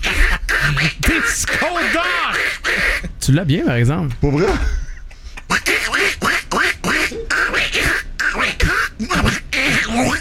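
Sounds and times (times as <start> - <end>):
person imitating nasal raspy duck quacks: 0.0 - 3.2, 5.4 - 10.2
speech: 3.3 - 4.8.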